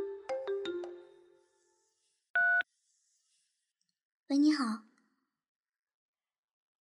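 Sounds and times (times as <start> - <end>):
phone ringtone of bright melodic notes: 0.0 - 1.2
speech: 4.3 - 4.9.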